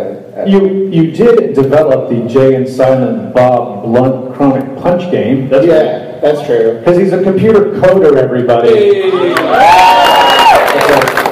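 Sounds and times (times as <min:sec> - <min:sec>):
speech: 0:00.3 - 0:10.2
live crowd cheering and clapping: 0:09.1 - 0:11.3.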